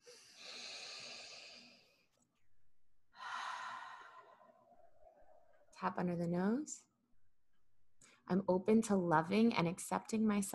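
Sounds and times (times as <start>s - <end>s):
deep breath during a guided tapping exercise: 0.0s - 2.1s, 3.1s - 5.6s
speech: 5.8s - 6.9s, 8.3s - 10.5s.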